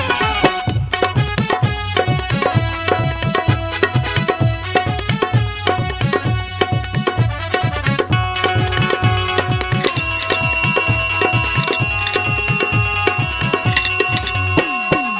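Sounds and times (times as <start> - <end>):
loud upbeat music track with steady thumping bass beat: 0.0 - 15.1
bright bicycle bell ringing: 9.8 - 15.1.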